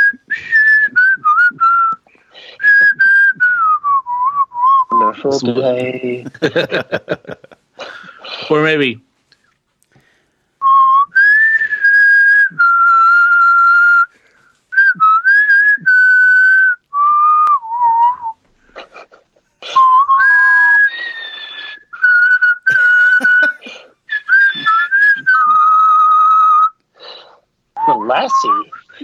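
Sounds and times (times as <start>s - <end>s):
person whistling a melodic tune: 0.0s - 5.1s, 10.6s - 18.4s, 19.6s - 27.2s, 27.8s - 29.0s
audible breaths: 2.0s - 2.7s, 7.8s - 8.5s, 9.4s - 10.6s, 14.1s - 14.8s, 20.9s - 21.8s, 26.9s - 27.5s
speech: 5.2s - 7.5s, 8.5s - 9.1s
laughter: 5.6s - 8.1s, 22.7s - 23.8s.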